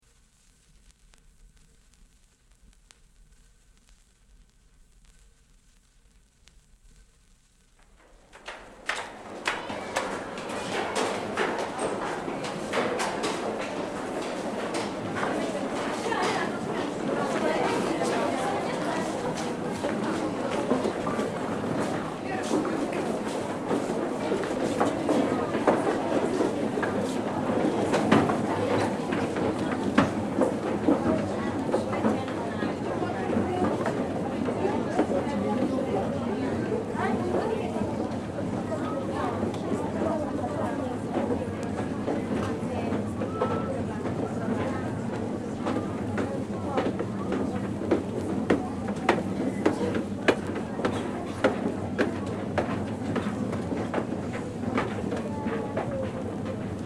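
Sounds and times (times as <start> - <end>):
underground station ambience during ascent from platform at Oxford Circus: 0.0 - 56.8.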